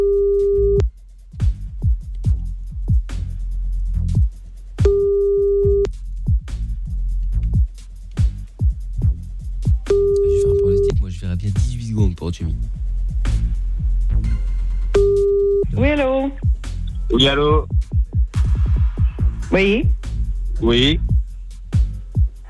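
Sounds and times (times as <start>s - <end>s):
telephone line tone while placing a call: 0.0s - 0.8s, 4.9s - 5.9s
busy rhythmic thumping beat: 0.0s - 22.4s
speech: 12.3s - 12.8s, 15.8s - 16.4s, 17.1s - 17.8s, 19.6s - 20.0s, 20.6s - 21.1s.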